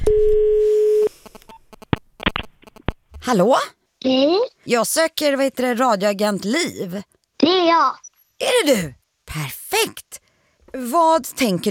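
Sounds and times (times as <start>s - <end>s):
steady telephone tone while placing a call: 0.0s - 1.1s
speech: 3.3s - 11.6s.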